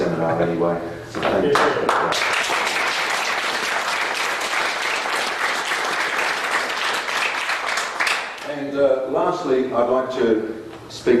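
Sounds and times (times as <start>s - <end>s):
speech: 0.2s - 2.3s, 9.2s - 11.1s
seminar audience applause: 1.6s - 8.5s.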